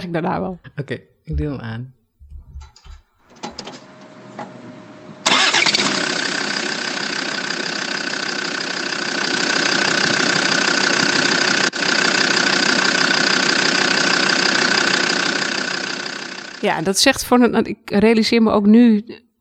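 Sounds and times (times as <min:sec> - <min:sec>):
speech: 0:00.0 - 0:02.0, 0:16.6 - 0:19.3
Land Rover Defender engine cranking, starting and idling: 0:03.2 - 0:16.8.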